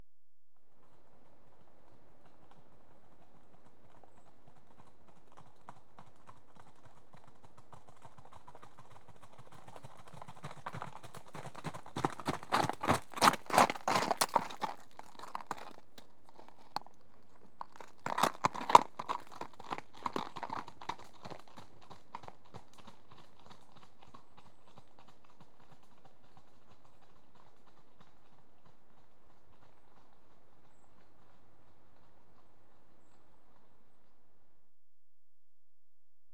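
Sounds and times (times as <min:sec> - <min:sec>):
two horses trotting on gravel: 0:02.2 - 0:30.9.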